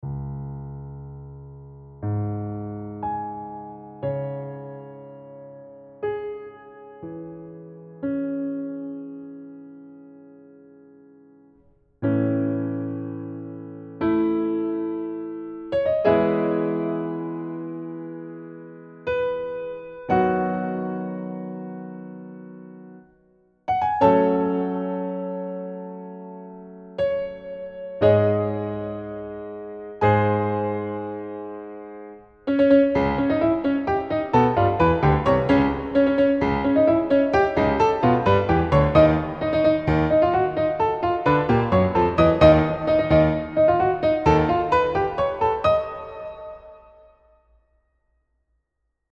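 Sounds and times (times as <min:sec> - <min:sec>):
piano music: 0:00.0 - 0:47.4.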